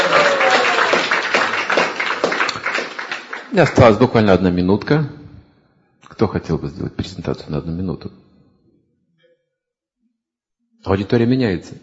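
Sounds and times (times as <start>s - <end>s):
audience applause: 0.0s - 4.2s
speech: 3.6s - 5.2s, 6.2s - 8.3s, 10.8s - 11.8s.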